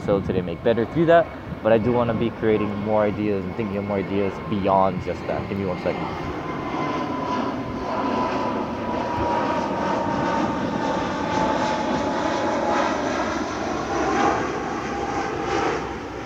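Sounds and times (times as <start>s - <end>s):
speech: 0.0s - 6.4s
airliner passing overhead: 0.0s - 16.2s.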